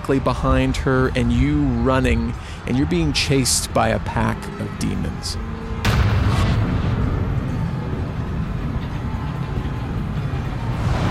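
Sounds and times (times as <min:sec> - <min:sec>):
speech: 0:00.1 - 0:05.6
explosion sound effect: 0:05.8 - 0:09.3, 0:10.6 - 0:11.0.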